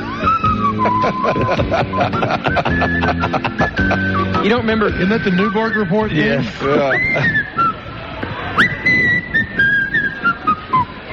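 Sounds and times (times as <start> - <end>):
laughter: 0.0 - 4.6, 6.2 - 7.7
low murmur: 0.0 - 11.1
person whistling a march-like movie theme tune: 0.1 - 7.8, 8.6 - 11.0
speech: 1.0 - 7.5.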